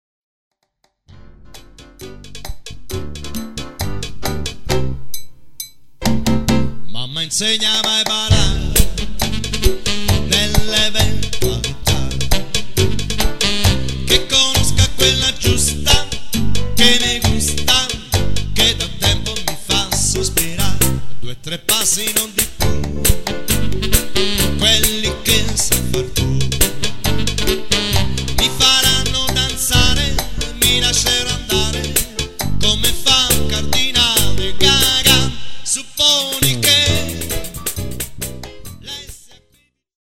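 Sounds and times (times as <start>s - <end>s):
cha cha music: 1.1s - 39.7s.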